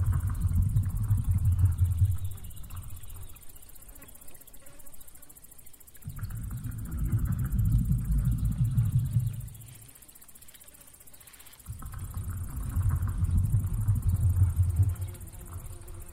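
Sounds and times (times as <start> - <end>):
deep thunder-like rumble of a female sturgeon: 0.0 - 3.4, 6.0 - 9.9, 11.7 - 16.1
faint hiss: 0.0 - 16.1.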